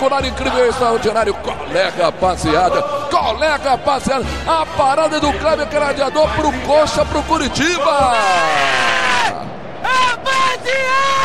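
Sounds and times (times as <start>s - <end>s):
speech: 0.0s - 9.0s, 9.8s - 11.2s
dense wash of stadium noise: 0.0s - 11.2s
football crowd screaming and cheering at a stadium in Brazil: 7.4s - 11.2s.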